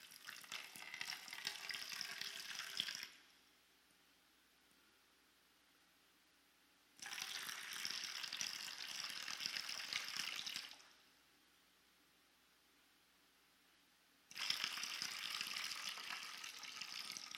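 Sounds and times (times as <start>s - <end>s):
water pouring in a steady hissing stream: 0.0s - 3.2s, 7.0s - 11.0s, 14.3s - 17.3s.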